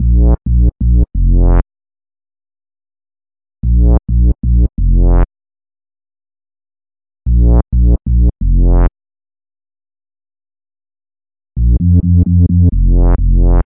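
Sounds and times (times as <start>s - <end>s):
two-step bass: 0.0s - 1.6s, 3.6s - 5.3s, 7.3s - 8.9s, 11.6s - 13.6s.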